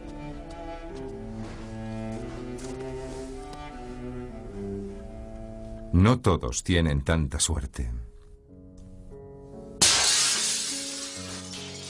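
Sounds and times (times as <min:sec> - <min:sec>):
speech: 0:06.0 - 0:08.0
glass shards falling: 0:09.8 - 0:11.8
glass windows and shop windows shattering: 0:09.8 - 0:11.8.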